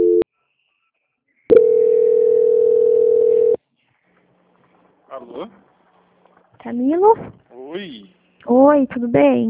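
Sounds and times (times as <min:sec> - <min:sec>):
steady mid-pitched telephone call transfer tone: 0:00.0 - 0:00.2, 0:01.5 - 0:03.6
speech: 0:05.4 - 0:05.7, 0:06.6 - 0:09.4.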